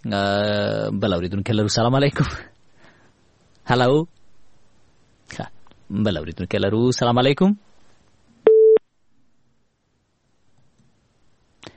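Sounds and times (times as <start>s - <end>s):
speech: 0.0s - 2.6s, 3.7s - 4.2s, 5.3s - 7.7s
telephone busy tone after a caller's line is cut off: 8.5s - 8.8s.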